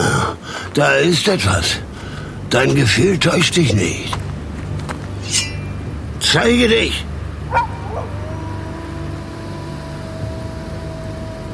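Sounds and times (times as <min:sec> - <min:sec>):
low steady rumble: 0:00.0 - 0:11.5
speech: 0:00.8 - 0:01.9, 0:02.5 - 0:04.2, 0:06.3 - 0:07.7
wolf barking: 0:07.5 - 0:10.0
wolf yelping: 0:07.5 - 0:11.5.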